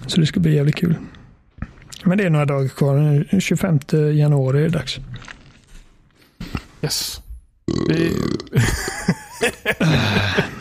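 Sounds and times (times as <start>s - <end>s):
speech: 0.1s - 1.2s, 2.0s - 5.3s, 6.8s - 10.3s
loud drawn-out gurgling burp: 7.7s - 8.8s
laughter: 8.6s - 10.5s.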